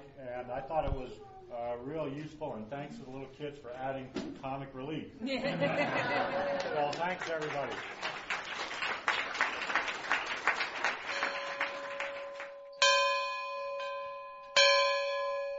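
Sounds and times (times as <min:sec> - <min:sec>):
speech: 0:00.4 - 0:08.2
laughter: 0:05.2 - 0:07.7
scattered applause: 0:06.2 - 0:12.7
dinner bell ringing: 0:11.1 - 0:15.5.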